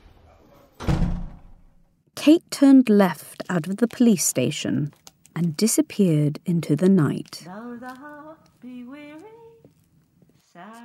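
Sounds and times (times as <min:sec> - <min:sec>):
heavy jail door at a police station pushed open with a clunk: 0:00.8 - 0:01.8
speech: 0:02.3 - 0:09.2.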